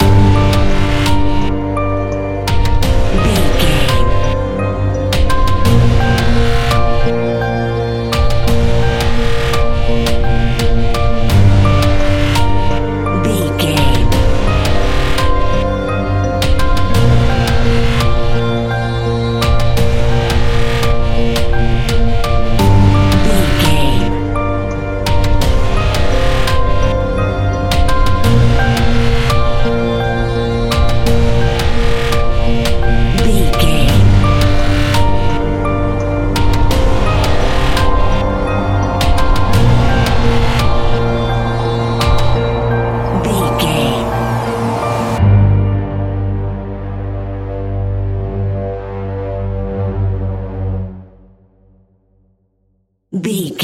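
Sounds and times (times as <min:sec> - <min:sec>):
echoing modern horror sounds: 0:00.0 - 0:51.3.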